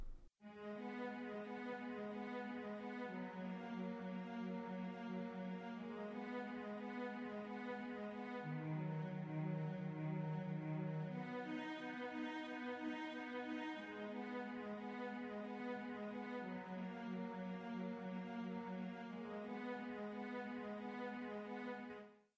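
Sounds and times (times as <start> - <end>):
solo cello playing long sustained bowed notes: 0.5 - 22.0.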